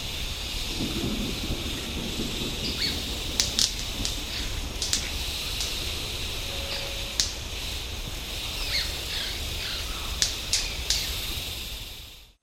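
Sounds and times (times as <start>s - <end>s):
constant high insect drone: 0.0s - 12.4s
white-bearded manakin sharp snaps: 2.7s - 7.8s, 10.0s - 11.6s
soft bird chirps: 4.2s - 11.3s.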